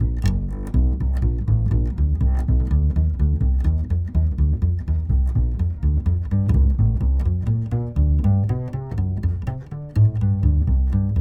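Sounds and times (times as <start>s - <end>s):
trad jazz bass line: 0.0s - 11.1s.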